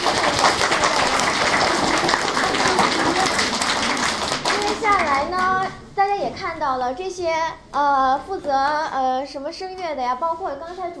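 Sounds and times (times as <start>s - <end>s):
audience applause at a school event: 0.0s - 5.5s
speech: 6.2s - 10.9s.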